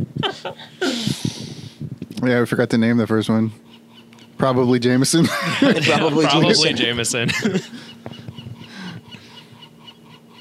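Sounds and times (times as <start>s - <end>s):
speech: 0.0s - 1.2s, 2.2s - 3.6s, 4.4s - 7.8s
steady low electrical hum in an indoor room: 0.0s - 10.3s
laughter: 0.2s - 1.1s, 5.1s - 9.2s
pet bird squawking in an indoor room: 7.8s - 10.3s.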